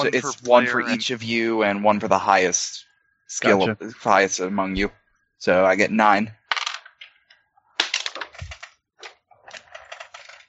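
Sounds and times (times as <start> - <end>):
laughter: 0.0 - 2.5, 3.4 - 4.4
speech: 0.0 - 6.4
dice clattering onto a tabletop during a tabletop roleplaying game: 6.5 - 7.1, 7.8 - 8.7, 9.6 - 10.4.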